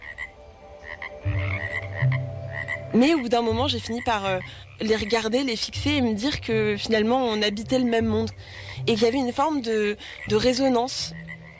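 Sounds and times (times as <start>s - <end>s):
frog croaking in a garden: 0.0s - 11.5s
speech: 2.9s - 11.2s.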